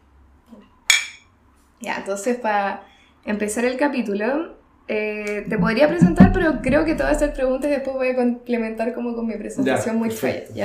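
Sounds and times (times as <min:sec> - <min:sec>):
glasses clinking in a toast: 0:00.9 - 0:01.3
speech: 0:01.8 - 0:10.6.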